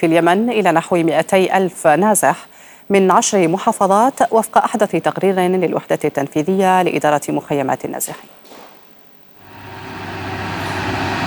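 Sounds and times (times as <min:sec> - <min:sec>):
speech: 0:00.0 - 0:08.5
large vehicle engine rumbling on mountain road: 0:09.4 - 0:11.2.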